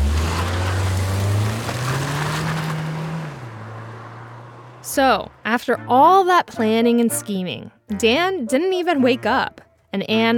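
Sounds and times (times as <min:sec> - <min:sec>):
car speeding up: 0:00.0 - 0:06.0
speech: 0:04.9 - 0:10.3.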